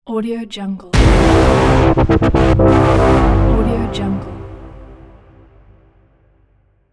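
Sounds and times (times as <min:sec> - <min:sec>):
futuristic horns: 0:01.0 - 0:05.9.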